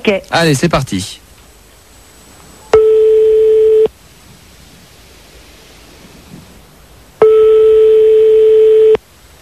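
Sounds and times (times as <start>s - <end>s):
speech: 0.0s - 1.2s
quiet hiss: 0.0s - 9.3s
telephone ringback tone over the line: 2.7s - 3.9s, 7.2s - 9.0s.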